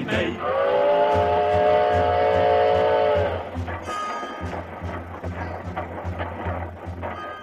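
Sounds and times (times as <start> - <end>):
wood-burning steam locomotive chugging: 0.0 - 7.4.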